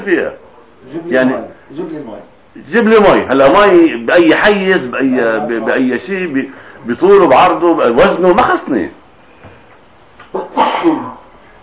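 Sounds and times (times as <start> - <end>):
speech: 0.0 - 9.0, 10.8 - 11.2
sneeze: 10.3 - 11.3.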